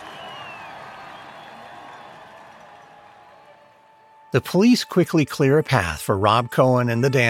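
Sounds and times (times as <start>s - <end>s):
crowd of people of all ages roaring in a street: 0.0s - 4.2s
people screaming and cheering: 0.0s - 5.3s
speech: 4.3s - 7.2s.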